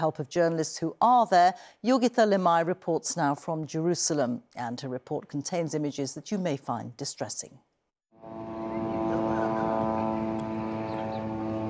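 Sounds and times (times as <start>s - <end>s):
speech: 0.0s - 7.7s
Israeli military drones whirring overhead in Gaza: 8.2s - 11.6s.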